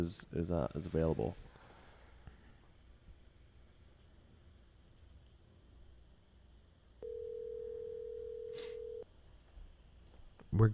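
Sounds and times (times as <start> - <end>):
speech: 0.0 - 1.5, 10.5 - 10.7
phone line ringback tone: 7.0 - 9.0.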